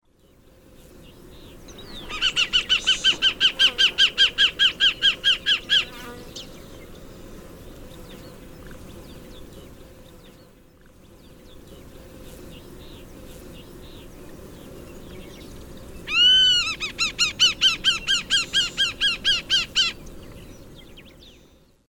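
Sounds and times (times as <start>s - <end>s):
Geranoaetus polyosoma calling: 2.1s - 5.9s, 16.1s - 20.0s.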